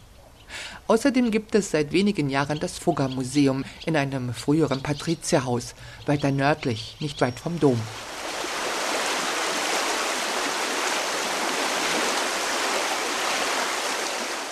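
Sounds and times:
speech: 0:00.9 - 0:08.1
water rushing through a city canal: 0:07.6 - 0:14.4.

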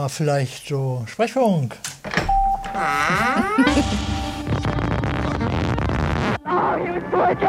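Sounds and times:
speech: 0:00.0 - 0:02.0, 0:02.7 - 0:04.3, 0:06.5 - 0:07.4
radio station jingle with chime-like tones and sung melodies: 0:02.4 - 0:07.4.

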